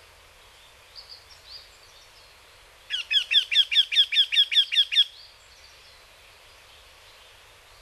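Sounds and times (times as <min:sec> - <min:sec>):
Eurasian wryneck calling descending nasal notes in Hyogo: 0:02.9 - 0:05.1.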